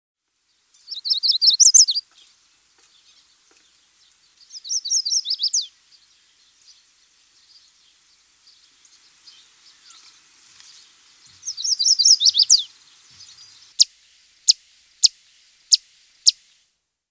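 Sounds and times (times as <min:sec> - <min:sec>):
Yellow Warbler singing: 0:00.4 - 0:13.9.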